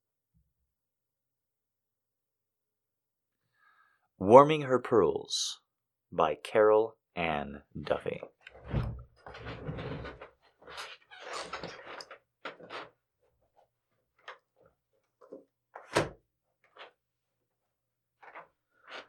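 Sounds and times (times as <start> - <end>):
speech: 4.2 - 9.9
chair rolling and scraping across a hard floor: 8.5 - 12.9
window sliding shut with knocks and a sharp thud: 8.6 - 10.2.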